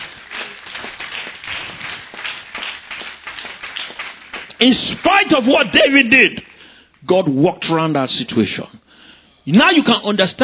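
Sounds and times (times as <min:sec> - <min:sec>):
audience clapping: 0:00.0 - 0:07.0
speech: 0:04.6 - 0:08.8, 0:09.5 - 0:10.4.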